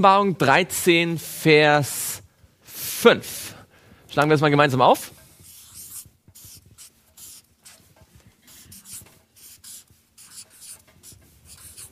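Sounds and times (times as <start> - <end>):
speech: 0.0 - 2.2, 3.0 - 5.2
writing on a board: 5.1 - 11.8.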